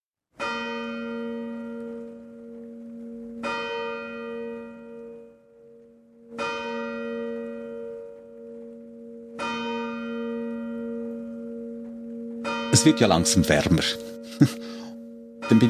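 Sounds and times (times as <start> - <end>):
church bell striking: 0.4 - 15.6
speech: 12.7 - 14.6, 15.5 - 15.6.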